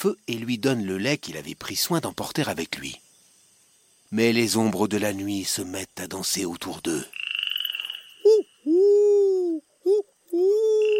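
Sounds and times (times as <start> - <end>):
speech: 0.0 - 3.0, 4.1 - 7.2
human voice imitating owl hoots: 8.1 - 10.9.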